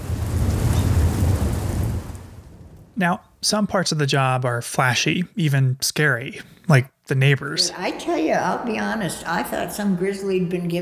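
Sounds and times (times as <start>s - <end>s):
deep rumble of thunder during a lightning storm: 0.0s - 3.2s
speech: 3.0s - 10.8s.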